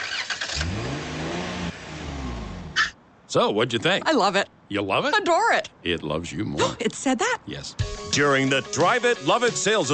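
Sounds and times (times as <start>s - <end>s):
Dodge Grand Caravan minivan engine revving: 0.0s - 2.9s
speech: 3.3s - 9.9s.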